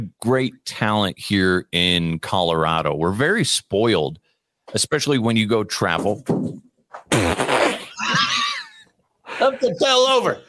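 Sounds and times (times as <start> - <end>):
speech: 0.2 - 7.5, 9.4 - 10.4
loud sputtering fart trailing into a squeal: 7.0 - 8.0
laughter: 7.9 - 9.8.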